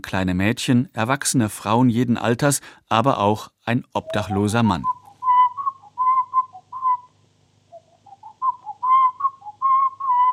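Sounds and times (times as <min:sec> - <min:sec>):
speech: 0:00.0 - 0:05.0
whistled melody: 0:04.0 - 0:07.1, 0:07.8 - 0:10.3.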